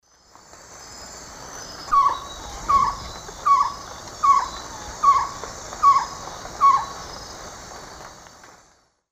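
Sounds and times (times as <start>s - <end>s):
Glaucidium brasilianum singing in the Eastern Lowlands of South America: 1.9s - 7.1s.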